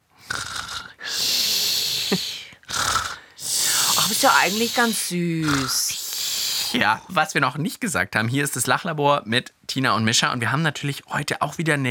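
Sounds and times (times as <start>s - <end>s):
person imitating their sister's snoring with their voice: 0.2s - 7.1s
speech: 2.1s - 2.8s, 4.1s - 6.0s, 6.7s - 11.8s.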